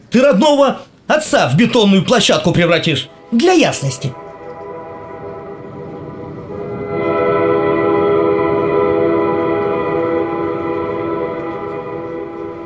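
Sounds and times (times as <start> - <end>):
speech: 0.1 - 4.2
deep sustained horn blast with low rumbling undertone: 2.9 - 12.6.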